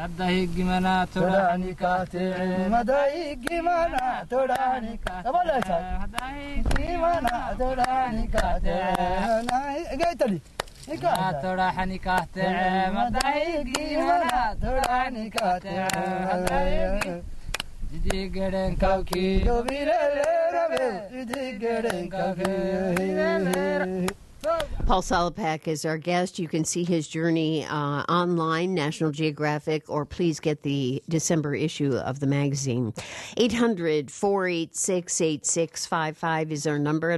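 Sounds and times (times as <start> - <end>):
speech: 0.0 - 17.3, 17.9 - 37.1
two men singing in Djibouti: 0.0 - 24.8.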